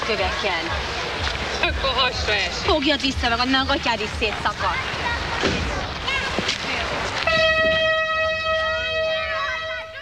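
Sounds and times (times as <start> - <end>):
speech: 0.1 - 6.5
vintage nostalgia train horn blasting: 7.2 - 10.0.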